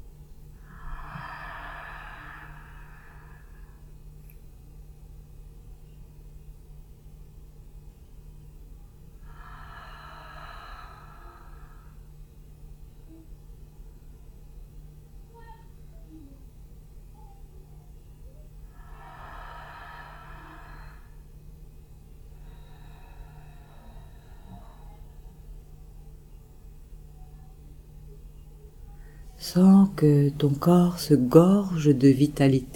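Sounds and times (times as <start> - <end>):
steady low hum: 0.0 - 32.7
slow deep inhalations: 0.6 - 4.0, 9.2 - 12.2, 18.7 - 21.3, 22.2 - 25.5
speech: 29.4 - 32.7.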